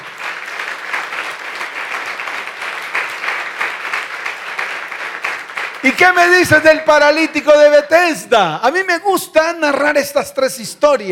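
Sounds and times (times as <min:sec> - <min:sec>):
congregation applauding: 0:00.0 - 0:08.2
speech: 0:05.8 - 0:11.0.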